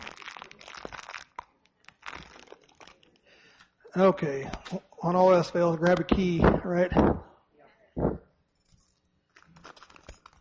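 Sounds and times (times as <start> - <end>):
plastic seed bag crinkling and being torn open: 0.0 - 3.4, 9.3 - 10.3
speech: 3.9 - 7.3.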